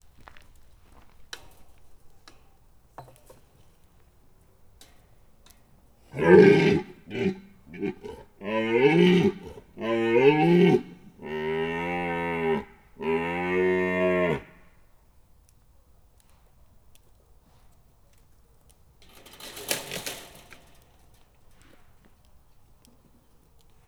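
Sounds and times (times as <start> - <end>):
red deer bellowing at a fence in a zoo: 6.1 - 14.7.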